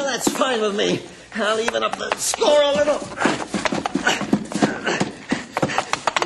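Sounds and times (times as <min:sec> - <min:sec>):
speech: 0:00.2 - 0:04.2
charging horse hooves clip-clopping: 0:01.6 - 0:06.2.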